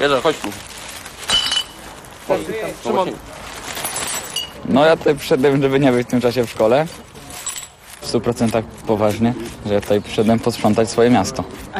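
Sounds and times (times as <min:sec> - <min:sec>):
speech: 0:00.0 - 0:00.8, 0:02.3 - 0:03.4, 0:04.7 - 0:07.1, 0:08.1 - 0:11.7
glass bottles clinking as they are picked up during a litter cleanup by the water: 0:01.3 - 0:01.8, 0:03.7 - 0:04.7.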